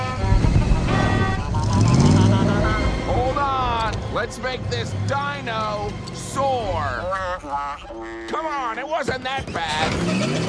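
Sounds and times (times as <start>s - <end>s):
pink food truck crashing through a gate: 0.0s - 4.1s, 9.4s - 10.4s
pink food truck engine roar: 0.0s - 8.5s, 9.6s - 10.4s
speech: 4.2s - 10.4s.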